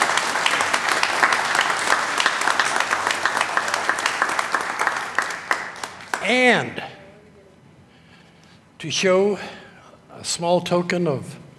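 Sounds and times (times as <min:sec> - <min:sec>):
crowd applauding: 0:00.0 - 0:06.5
speech: 0:06.3 - 0:06.9, 0:08.8 - 0:09.6, 0:10.2 - 0:11.4.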